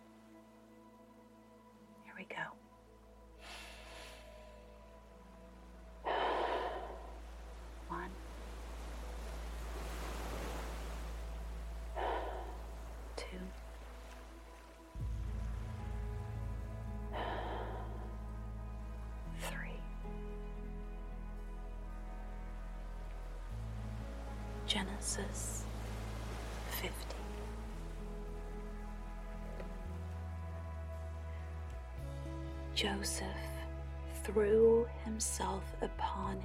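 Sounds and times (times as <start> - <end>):
speech: 2.2 - 2.6, 24.7 - 25.6, 32.8 - 33.6, 34.3 - 36.4
steady low hum: 2.5 - 35.5
slow deep human breaths: 3.4 - 5.0, 6.0 - 7.3, 11.9 - 13.0, 17.0 - 18.4.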